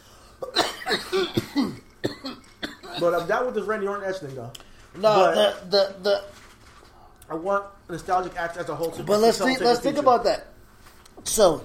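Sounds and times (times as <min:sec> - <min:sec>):
person coughing harshly: 0:00.4 - 0:03.4
speech: 0:03.0 - 0:06.4, 0:07.3 - 0:10.5, 0:11.2 - 0:11.6.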